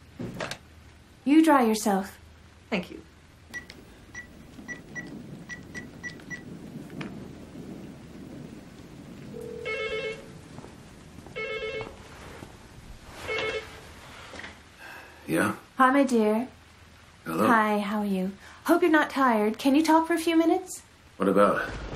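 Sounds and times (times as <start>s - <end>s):
rain-like hiss: 0.0s - 21.9s
speech: 1.5s - 3.1s, 15.8s - 16.6s, 17.3s - 21.9s
telephone ringing after a number is dialed: 9.4s - 10.4s, 11.4s - 12.0s, 13.2s - 13.8s.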